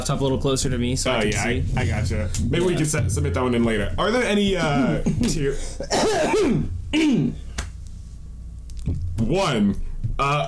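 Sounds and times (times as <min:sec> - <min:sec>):
speech: 0:00.0 - 0:07.4, 0:09.2 - 0:10.4
person coughing deliberately: 0:05.4 - 0:07.5.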